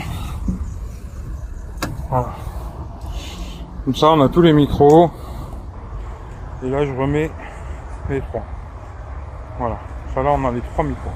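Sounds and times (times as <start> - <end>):
steady low outdoor rumble: 0.0 - 11.1
car being locked with a sharp clunk: 1.6 - 2.2
speech: 2.1 - 2.5, 3.9 - 5.2, 6.6 - 7.4, 8.1 - 8.5, 9.6 - 11.1.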